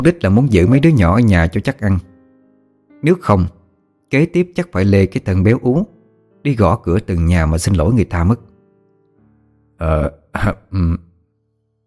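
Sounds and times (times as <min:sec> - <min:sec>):
speech: 0:00.0 - 0:02.1, 0:03.0 - 0:08.5, 0:09.8 - 0:11.1
heavyset father clearing his throat, acted out by a voice: 0:09.8 - 0:11.1.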